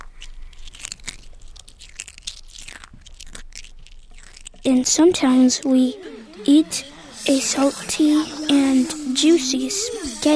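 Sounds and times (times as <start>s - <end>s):
crisp salad being chewed with crackly bites: 0.0s - 6.4s
speech: 4.6s - 10.3s.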